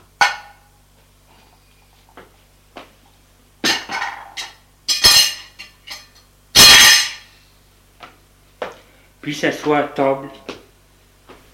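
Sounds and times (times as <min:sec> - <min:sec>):
glasses being set down on a table: 0:03.7 - 0:06.2
speech: 0:09.2 - 0:10.5.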